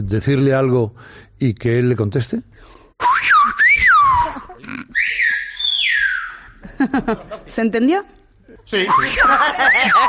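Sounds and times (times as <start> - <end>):
speech: 0.0 - 2.8, 7.0 - 10.0
whistled language phrases exchanged between two people: 3.0 - 6.6, 8.8 - 10.0
laughter: 6.6 - 7.7, 8.8 - 10.0.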